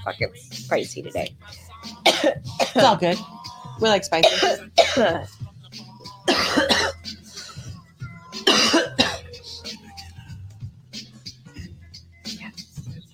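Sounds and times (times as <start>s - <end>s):
speech: 0.0s - 6.9s
person coughing hard: 2.0s - 3.0s, 4.2s - 5.3s, 6.3s - 7.1s, 8.4s - 9.3s.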